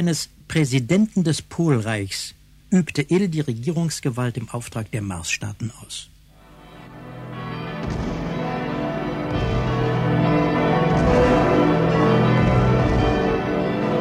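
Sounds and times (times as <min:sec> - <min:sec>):
speech: 0:00.0 - 0:06.1
church bells ringing in a dense overlapping peal: 0:06.6 - 0:13.9.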